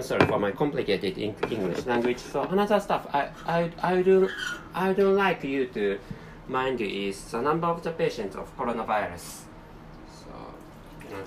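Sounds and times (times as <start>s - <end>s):
speech: 0.0s - 9.5s
boiled water being poured: 10.6s - 11.2s.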